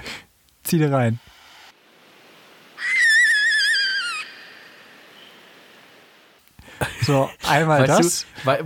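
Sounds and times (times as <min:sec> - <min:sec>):
speech: 0:00.7 - 0:01.3, 0:07.1 - 0:08.6
wavering whistled owl call: 0:02.8 - 0:05.6.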